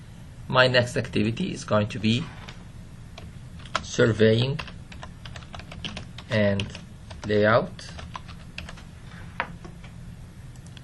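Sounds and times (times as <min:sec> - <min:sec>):
speech: 0:00.5 - 0:02.4, 0:04.0 - 0:04.7, 0:06.3 - 0:08.0
typing on a computer keyboard: 0:03.2 - 0:08.8.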